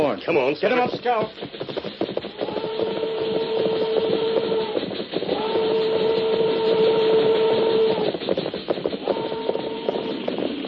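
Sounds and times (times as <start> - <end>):
slow-moving train rolling on rails: 0.0 - 10.6
speech: 0.2 - 2.0
train whistle blasts: 2.4 - 8.2, 9.0 - 10.3.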